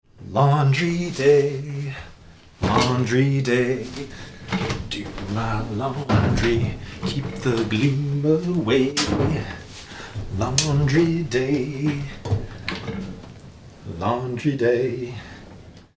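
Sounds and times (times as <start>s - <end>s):
a cappella singing: 0.2s - 12.5s, 13.9s - 15.3s.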